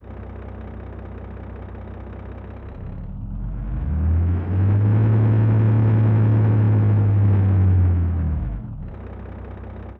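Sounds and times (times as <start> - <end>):
modern truck engine outside: 0.0 - 9.9.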